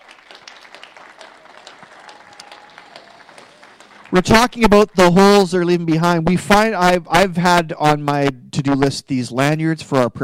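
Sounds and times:
roomful of people clapping: 0:00.0 - 0:05.9
speech: 0:04.1 - 0:10.2.

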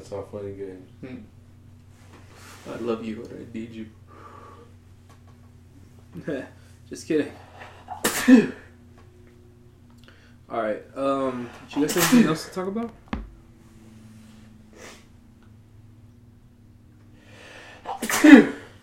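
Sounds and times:
faint hum: 0:00.0 - 0:18.8
speech: 0:00.1 - 0:01.4, 0:02.6 - 0:04.0, 0:06.1 - 0:07.5, 0:08.2 - 0:08.6, 0:10.5 - 0:13.0
person sneezing: 0:07.9 - 0:08.6, 0:17.9 - 0:18.7.

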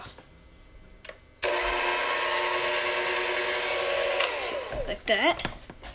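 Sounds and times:
electric hand mixer beating waffle batter: 0:01.4 - 0:05.2
speech: 0:05.1 - 0:05.6.

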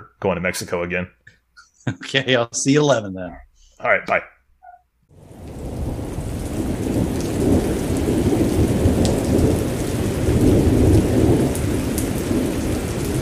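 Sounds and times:
speech: 0:00.2 - 0:04.4
heavy rain hissing in a lightning storm: 0:05.1 - 0:13.1
low thunder rumbling and rolling: 0:05.2 - 0:13.1.

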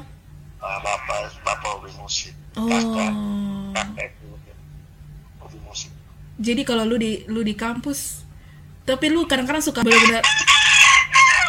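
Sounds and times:
speech: 0:02.2 - 0:03.5, 0:06.4 - 0:08.2, 0:08.9 - 0:10.5
rooster crowing: 0:09.8 - 0:11.4.

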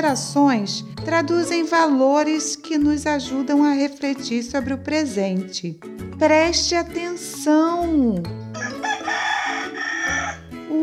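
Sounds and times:
speech: 0:00.0 - 0:09.2
rooster crowing: 0:08.5 - 0:10.5.

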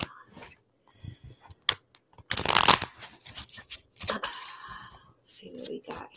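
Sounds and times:
tarot cards being shuffled: 0:01.6 - 0:04.2.

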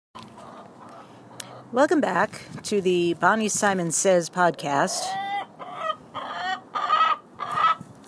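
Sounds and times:
chickens clucking: 0:00.2 - 0:01.7, 0:04.6 - 0:07.9
speech: 0:01.7 - 0:05.4.

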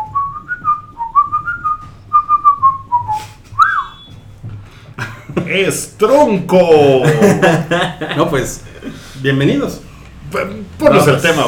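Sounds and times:
person whistling a melody: 0:00.0 - 0:04.2
laughter: 0:05.0 - 0:05.8, 0:06.8 - 0:09.2
speech: 0:05.5 - 0:11.4.

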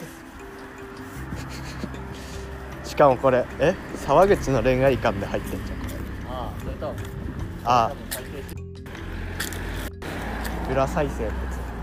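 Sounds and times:
handheld phone rustling and rubbing against the microphone: 0:01.2 - 0:02.0
speech: 0:03.0 - 0:05.8, 0:06.4 - 0:08.1, 0:10.7 - 0:11.5.

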